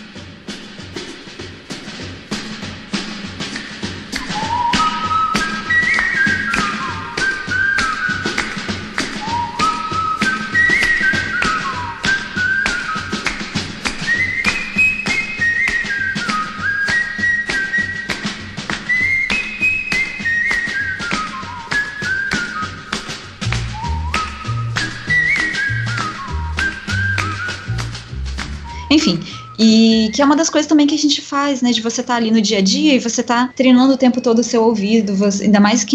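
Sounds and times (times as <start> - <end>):
tapping percussion in rhythmic backing: 0.0 - 32.1
whistled melody: 3.6 - 30.6
speech: 30.2 - 35.9.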